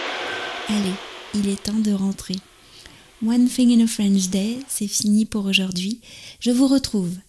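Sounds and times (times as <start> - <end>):
cricket-like chirping in a metro station: 0.1 - 7.2
speech: 0.8 - 2.5, 3.2 - 7.2.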